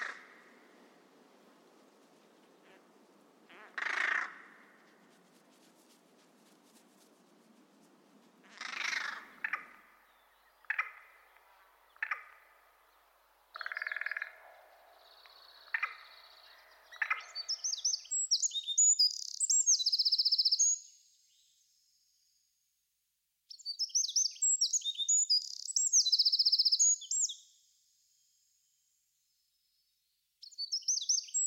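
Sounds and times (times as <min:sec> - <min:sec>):
faintly hissing outdoor background: 0:00.0 - 0:31.4
lower rougher bird calls: 0:02.2 - 0:20.4
carrion crow cawing: 0:02.6 - 0:04.8, 0:08.4 - 0:10.0, 0:13.5 - 0:17.4
European robin singing: 0:08.0 - 0:21.4, 0:23.5 - 0:27.4, 0:30.4 - 0:31.4.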